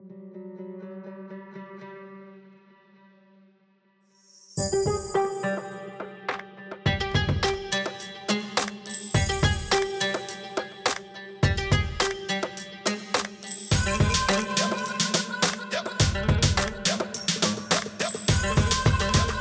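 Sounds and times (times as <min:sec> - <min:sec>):
Arabic oud: 0:00.0 - 0:03.2, 0:04.6 - 0:19.3.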